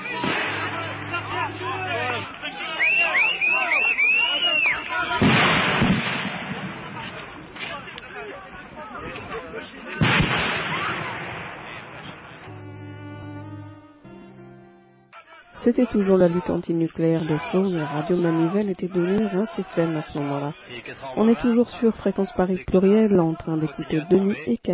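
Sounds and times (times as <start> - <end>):
shots fired by mobile guards at antinuclear protesters at a barricade: 0.0 - 1.6, 5.1 - 8.0, 9.9 - 12.5
wavering whistle-like tone: 0.0 - 4.9
people shouting: 0.0 - 5.9, 7.0 - 11.4, 15.1 - 22.3
crowd din of antinuclear protesters: 0.0 - 24.4
speech: 15.7 - 24.7.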